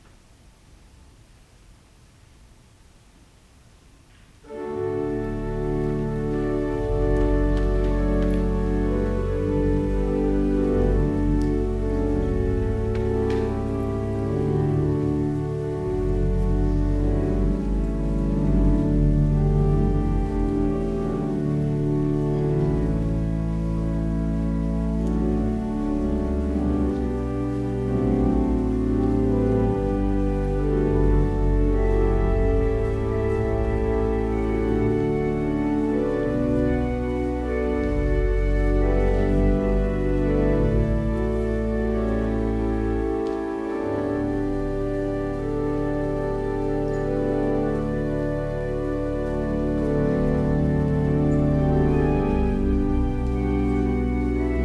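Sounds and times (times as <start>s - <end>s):
organ music: 4.4s - 54.6s.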